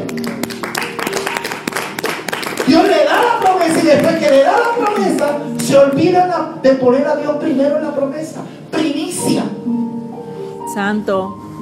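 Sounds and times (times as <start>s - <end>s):
crowd applauding: 0.0s - 6.1s
speech: 2.7s - 8.6s, 10.8s - 11.4s.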